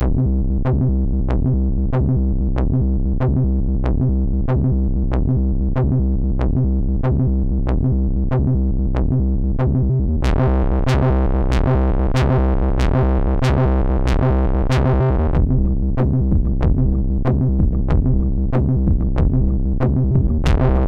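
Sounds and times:
ambient music on MOS6581R2: 0:00.0 - 0:20.8.

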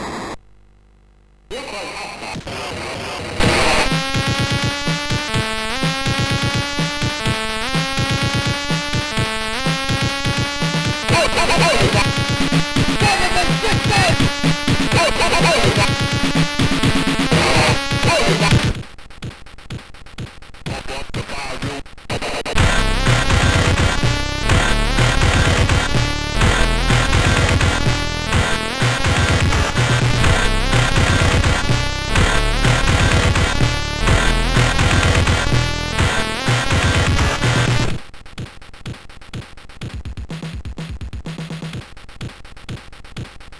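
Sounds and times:
chiptune music on MOS6581R4 sound chip: 0:03.4 - 0:18.6, 0:22.6 - 0:38.0.

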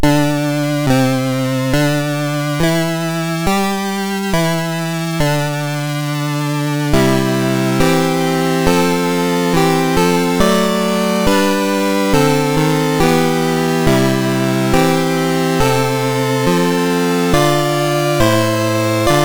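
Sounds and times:
national anthem chiptune on MOS6581R3 sound chip: 0:00.0 - 0:19.2.

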